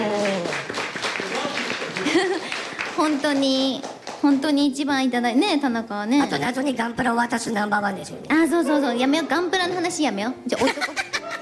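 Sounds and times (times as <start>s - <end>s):
studio audience clapping as a guest receives a gift: 0.0s - 4.6s
people laughing in a studio: 1.3s - 2.8s, 10.5s - 11.4s
speech: 3.0s - 10.9s.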